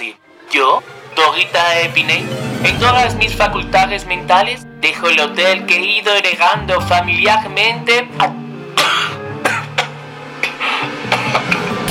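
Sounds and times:
speech: 0.1 - 8.4
person in a coughing fit: 8.2 - 11.5.

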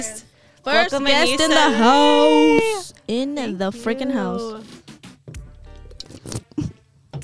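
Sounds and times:
speech: 0.0 - 4.7
slurping a sip of a drink: 5.9 - 6.8
smacking and gulping mouth noises: 5.9 - 6.8.

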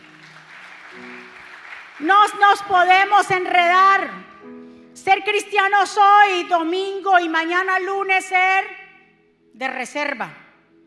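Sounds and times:
congregation applause: 0.0 - 2.4
speech: 2.0 - 4.3, 5.0 - 8.8, 9.6 - 10.4.

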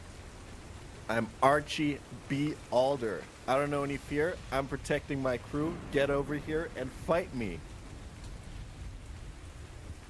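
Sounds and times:
storm rain: 0.0 - 10.0
storm wind: 0.0 - 10.0
speech: 1.1 - 7.7
deep low rumble: 5.3 - 10.0.

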